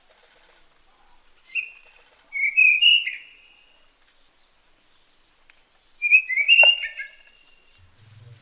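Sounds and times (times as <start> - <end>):
Tanahjampea blue flycatcher singing sweet slurred whistles and warble: 1.5 - 3.8, 5.8 - 7.8.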